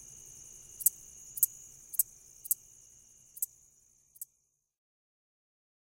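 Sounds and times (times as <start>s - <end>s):
red-headed meadow katydid singing: 0.0s - 4.3s.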